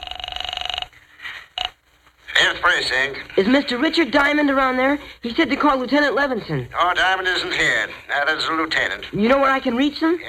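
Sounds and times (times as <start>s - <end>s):
telephone line ringing with buzzing warble: 0.0s - 1.0s
speech: 2.6s - 10.2s.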